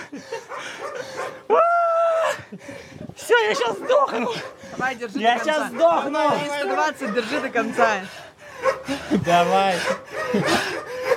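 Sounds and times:
neighbor's dog barking and howling: 0.3 - 1.6, 3.6 - 4.6, 5.3 - 8.0, 8.6 - 9.0, 9.7 - 11.1
speech: 3.4 - 10.7.

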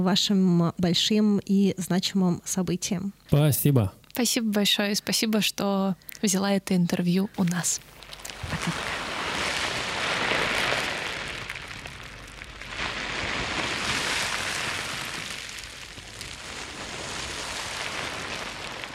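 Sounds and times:
speech: 0.0 - 9.0
loose plastic debris rustling on a beach: 7.9 - 18.9.

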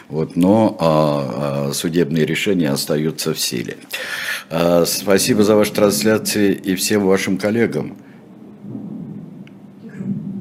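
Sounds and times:
speech: 0.1 - 8.1
thunder rumbling: 5.2 - 10.4.

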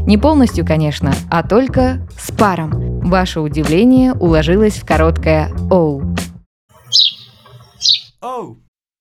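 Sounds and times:
speech: 0.1 - 6.2, 6.9 - 7.2, 7.8 - 8.6
sparrow chirping: 6.8 - 8.2.

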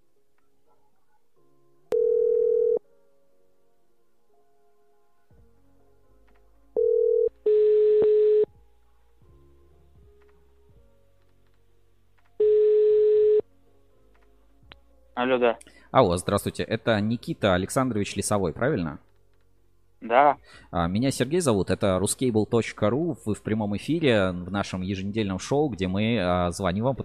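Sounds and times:
telephone line dial tone: 1.9 - 2.8, 6.8 - 8.5, 12.4 - 13.4
speech: 15.2 - 19.1, 20.0 - 27.0.

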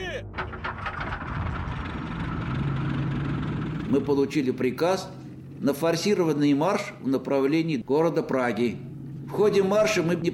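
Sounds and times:
heavy Red Army tank engines starting up and rumbling: 0.0 - 10.3
harsh mechanical clatter of tanks: 0.2 - 4.0
speech: 3.9 - 10.3.

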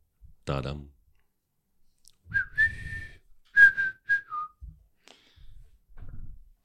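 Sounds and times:
speech: 0.5 - 1.0
person whistling a short suspenseful jingle: 2.3 - 4.6.

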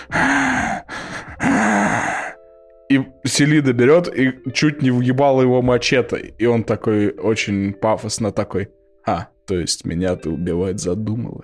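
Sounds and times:
voice imitating heavy breathing: 0.0 - 2.4
speech: 2.9 - 11.4.

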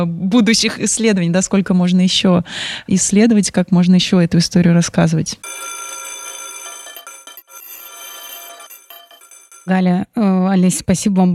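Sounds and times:
speech: 0.0 - 5.8, 9.7 - 11.3
loud electric school bell ringing shrilly: 5.4 - 9.8.

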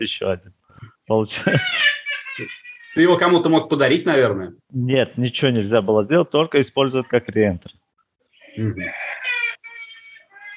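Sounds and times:
speech: 0.0 - 7.8, 8.6 - 9.1
child crying while leaving the house: 9.1 - 10.5.

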